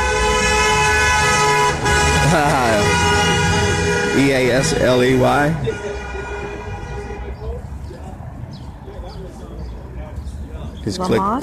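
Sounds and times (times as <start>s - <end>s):
truck horn blaring: 0.0s - 7.6s
murmur of voices: 4.1s - 11.4s
speech: 4.2s - 6.0s, 10.8s - 11.4s.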